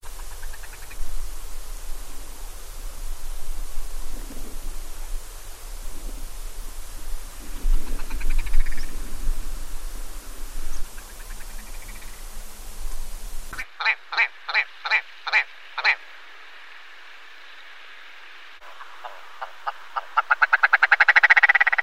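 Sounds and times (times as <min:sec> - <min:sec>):
upland heath ambience: 0:00.0 - 0:21.8.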